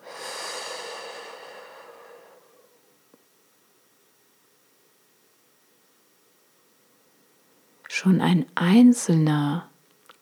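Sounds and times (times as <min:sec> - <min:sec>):
deep breath in through the nose and out through the mouth as a calming breathing exercise: 0:00.0 - 0:02.8
speech: 0:08.0 - 0:09.7.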